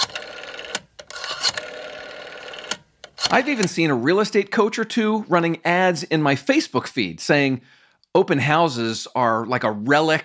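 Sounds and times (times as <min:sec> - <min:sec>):
rotary phone dial whirring and clicking: 0:00.0 - 0:03.7
speech: 0:03.3 - 0:10.2.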